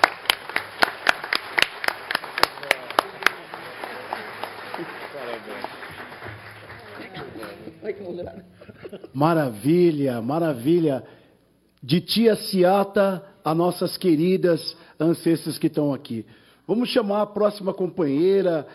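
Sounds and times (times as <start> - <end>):
audience applause: 0.0 - 7.7
speech: 7.9 - 11.2, 11.8 - 18.7.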